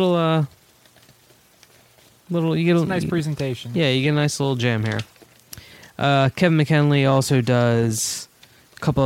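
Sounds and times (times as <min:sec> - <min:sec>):
speech: 0:00.0 - 0:00.6, 0:02.3 - 0:05.1, 0:06.0 - 0:09.0
8.5 by 14 inch paper poster being folded: 0:00.4 - 0:05.9.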